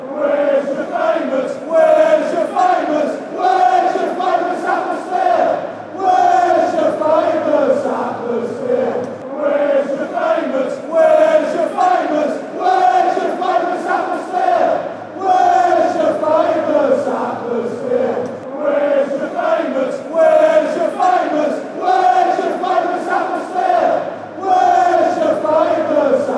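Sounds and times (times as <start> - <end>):
football fans chanting: 0.0 - 26.3.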